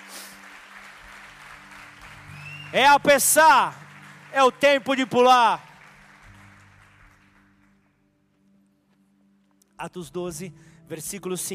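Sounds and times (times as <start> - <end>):
church congregation applauding during a service: 0.0 - 8.1
speech: 2.7 - 5.7, 9.8 - 11.5.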